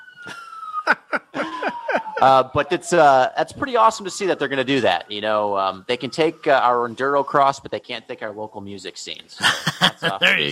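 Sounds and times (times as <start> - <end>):
emergency vehicle siren passing outside: 0.0 - 7.4
laughter: 0.3 - 2.9, 9.4 - 10.4
speech: 2.2 - 10.4.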